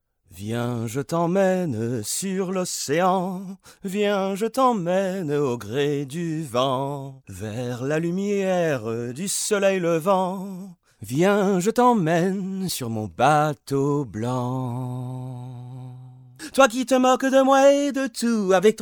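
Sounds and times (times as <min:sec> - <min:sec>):
men singing in French: 0:00.4 - 0:18.8.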